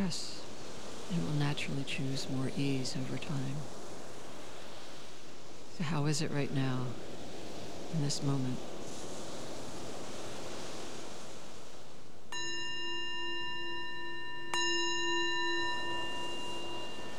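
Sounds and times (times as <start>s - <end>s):
speech: 0.0s - 0.4s, 1.1s - 3.8s, 5.8s - 7.1s, 7.9s - 8.7s
surf-like ambience: 0.0s - 17.1s
meditation bell ringing: 12.3s - 17.1s.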